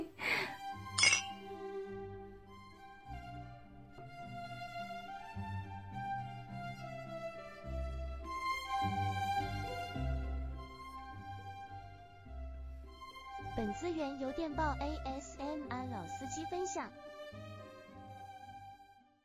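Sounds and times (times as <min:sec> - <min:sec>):
music: 0:00.0 - 0:19.2
glasses clinking in a toast: 0:01.0 - 0:01.4
speech: 0:13.6 - 0:17.4.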